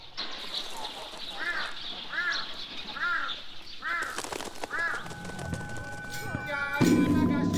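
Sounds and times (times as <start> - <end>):
crow cawing: 1.4 - 5.7
clattering: 5.3 - 7.5.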